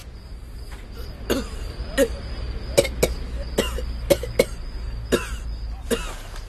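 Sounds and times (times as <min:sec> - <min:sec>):
person coughing up blood with harsh coughs: 0:01.3 - 0:02.2, 0:02.8 - 0:04.6, 0:05.1 - 0:06.2.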